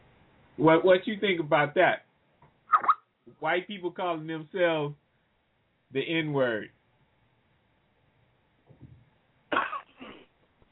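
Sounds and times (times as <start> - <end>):
speech: 0.6 - 2.0, 3.3 - 5.0, 5.9 - 6.8
person clearing throat: 9.5 - 10.4.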